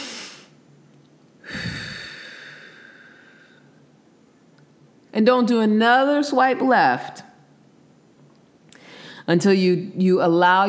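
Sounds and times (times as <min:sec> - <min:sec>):
deep slow calming breath: 0:01.4 - 0:03.8
speech: 0:05.2 - 0:07.2, 0:09.3 - 0:10.6.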